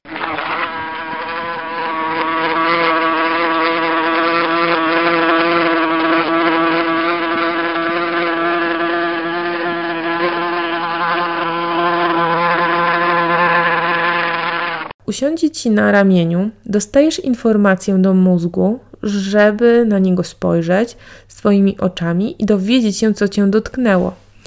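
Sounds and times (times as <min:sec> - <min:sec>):
wasp buzzing: 0:00.0 - 0:14.9
speech: 0:15.2 - 0:24.2.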